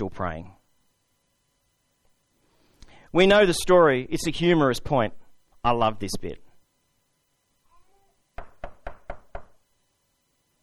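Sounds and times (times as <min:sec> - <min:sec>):
speech: 0:00.0 - 0:00.6, 0:03.1 - 0:06.4
firm knocking on a door: 0:08.4 - 0:09.6.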